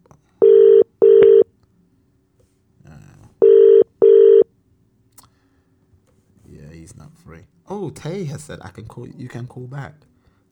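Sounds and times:
telephone ringback tone in a double-burst pattern as a call is placed: 0:00.4 - 0:01.4, 0:03.4 - 0:04.5
speech: 0:07.8 - 0:10.1.

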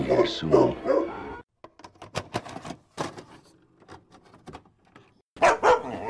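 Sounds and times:
dogs barking: 0:00.0 - 0:01.4, 0:05.4 - 0:06.0
speech: 0:00.1 - 0:01.0.

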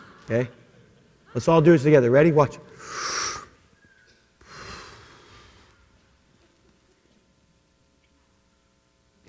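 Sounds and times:
speech: 0:00.3 - 0:00.6, 0:01.3 - 0:03.1
strong breathy exhale: 0:02.8 - 0:03.6, 0:04.4 - 0:05.8.

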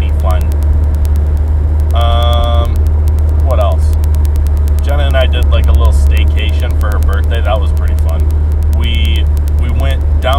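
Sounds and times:
faint rapid rattling ticks in a moving car: 0:00.0 - 0:10.3
low car engine and road rumble from inside a moving car: 0:00.0 - 0:10.3.

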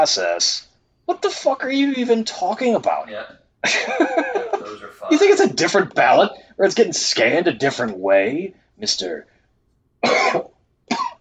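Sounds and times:
speech: 0:00.0 - 0:09.3, 0:10.0 - 0:10.5
laughter: 0:03.6 - 0:05.1
person coughing harshly: 0:04.4 - 0:05.1, 0:10.0 - 0:11.1.

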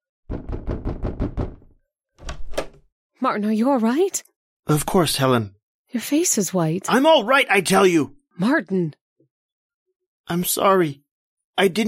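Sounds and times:
knocking on a door: 0:00.3 - 0:02.8
speech: 0:03.2 - 0:09.0, 0:10.3 - 0:11.0, 0:11.6 - 0:11.8.

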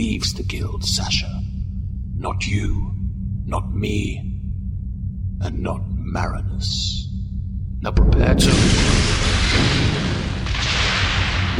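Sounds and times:
speech: 0:00.0 - 0:01.5, 0:02.2 - 0:04.3, 0:05.4 - 0:07.1, 0:07.8 - 0:09.9
spaceship firing weapons on another ship: 0:08.0 - 0:11.5.

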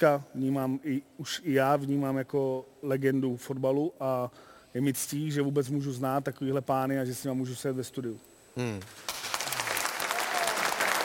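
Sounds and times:
speech: 0:00.0 - 0:09.2
people clapping in a studio: 0:09.0 - 0:11.0.

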